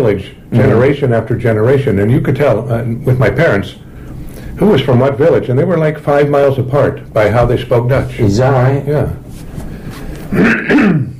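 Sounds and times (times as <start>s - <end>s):
speech: 0.0s - 3.8s, 4.6s - 9.2s, 10.3s - 11.1s
raspy throat clearing: 10.3s - 11.1s.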